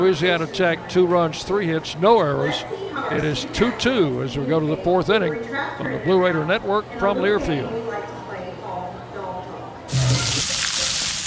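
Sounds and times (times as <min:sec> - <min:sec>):
speech: 0:00.0 - 0:08.1
hot dogs sizzling on a grill: 0:09.9 - 0:11.2.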